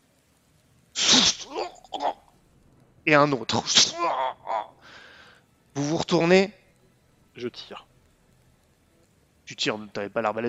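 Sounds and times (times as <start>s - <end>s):
speech: 3.1s - 4.3s, 5.8s - 6.6s, 7.4s - 7.9s, 9.5s - 10.4s
voice imitating a wet guttural gurgle: 3.6s - 4.8s.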